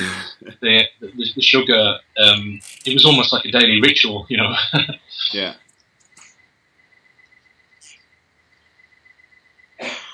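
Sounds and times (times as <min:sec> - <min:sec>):
laughter: 0:00.0 - 0:05.5
speech: 0:00.0 - 0:05.6
steady insect-like chirring hum: 0:00.6 - 0:10.1
person coughing: 0:09.8 - 0:10.1.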